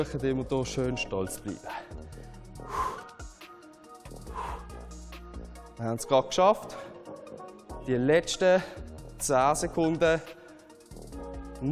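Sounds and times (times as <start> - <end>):
speech: 0.0 - 2.1, 5.8 - 6.8, 7.9 - 10.4
upbeat music: 0.0 - 11.6
heavy panting during exercise: 1.8 - 3.4, 4.1 - 5.6.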